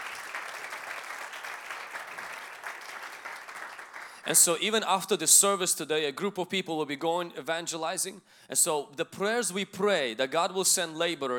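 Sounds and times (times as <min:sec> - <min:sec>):
audience applauding: 0:00.0 - 0:04.6
speech: 0:04.3 - 0:11.3.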